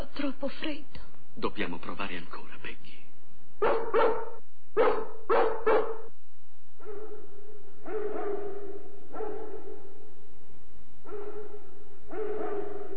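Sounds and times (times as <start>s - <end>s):
speech: 0.2s - 3.0s, 3.6s - 6.0s
Great Dane barking in the distance: 3.6s - 6.1s, 6.8s - 10.0s, 11.0s - 12.9s.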